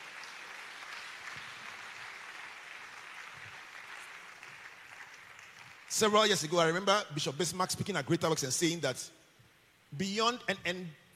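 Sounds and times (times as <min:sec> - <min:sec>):
large crowd clapping: 0:00.0 - 0:06.5
speech: 0:05.9 - 0:09.2, 0:09.9 - 0:11.0.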